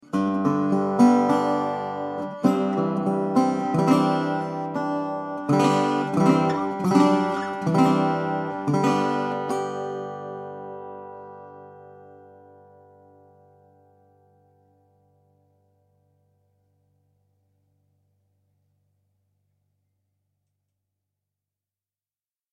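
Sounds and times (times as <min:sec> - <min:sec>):
tricone resonator guitar picked: 0:00.0 - 0:13.4.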